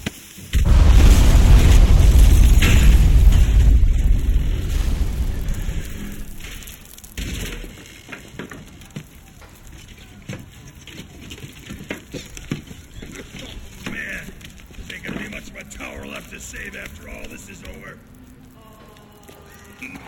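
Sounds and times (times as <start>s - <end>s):
debris crackling: 0.2s - 20.0s
pipe bomb exploding: 0.6s - 7.7s.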